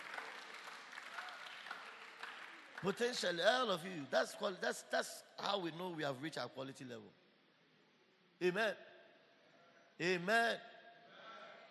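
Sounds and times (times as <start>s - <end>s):
audience clapping: 0.0s - 3.9s
speech: 2.8s - 7.2s, 8.4s - 8.9s, 10.0s - 10.7s.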